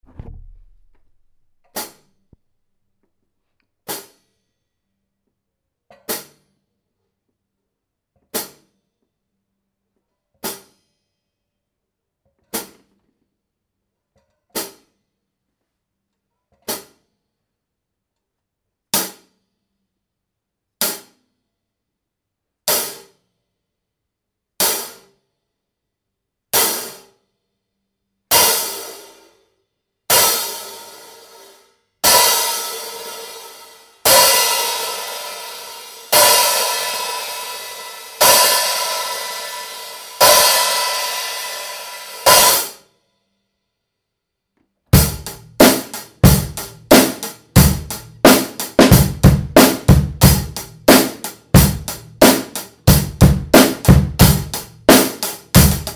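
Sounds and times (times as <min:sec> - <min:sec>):
classic 14-inch flat hole hi-hat hit: 0:32.1 - 0:42.7, 0:45.0 - 0:55.9.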